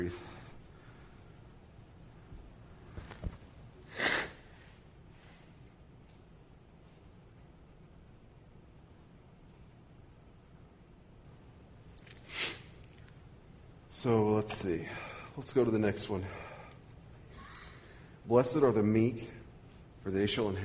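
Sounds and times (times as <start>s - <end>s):
speech: 0.0s - 0.3s, 14.0s - 16.4s, 18.3s - 19.4s, 20.0s - 20.6s
quiet hiss: 0.0s - 20.6s
person blowing nose: 3.9s - 4.4s, 12.2s - 12.7s.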